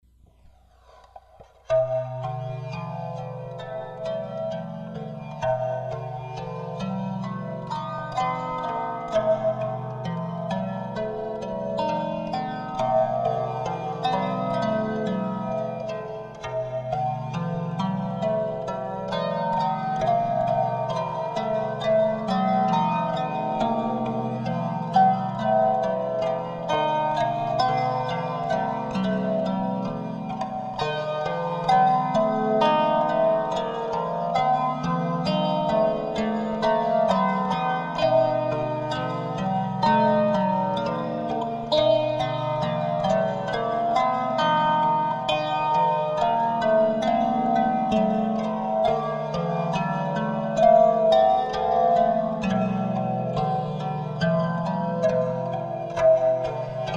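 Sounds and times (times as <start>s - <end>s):
harp psaltery: 0.1s - 56.9s.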